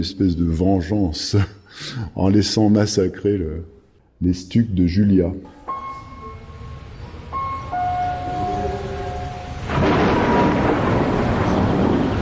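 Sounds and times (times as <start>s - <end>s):
speech: 0.0s - 5.6s
quiet steady tones: 0.0s - 10.1s
thunder rumbling: 6.8s - 12.1s.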